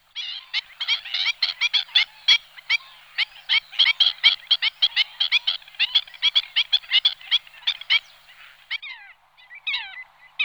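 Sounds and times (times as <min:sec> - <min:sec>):
black-winged stilt yapping calls: 0:00.4 - 0:08.7.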